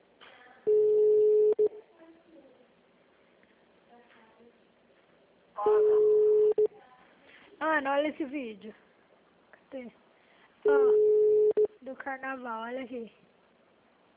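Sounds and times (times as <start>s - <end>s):
telephone ringback tone while a call is placed: 0.7s - 1.7s, 5.7s - 6.7s, 10.7s - 11.7s
speech: 8.0s - 8.8s, 9.7s - 10.0s, 10.6s - 11.0s, 11.9s - 13.3s.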